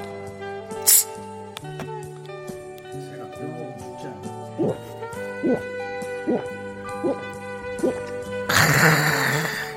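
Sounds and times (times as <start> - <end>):
soft music: 0.0 - 9.7
person gulping cola: 4.6 - 9.7.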